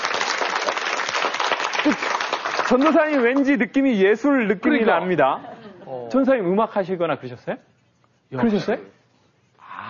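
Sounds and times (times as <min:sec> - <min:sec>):
church gathering applauding: 0:00.0 - 0:03.9
speech: 0:02.7 - 0:07.7, 0:08.3 - 0:09.0.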